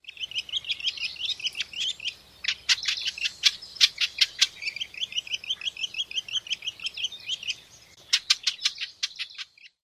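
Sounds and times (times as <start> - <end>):
bird twittering song: 0.0 - 9.8.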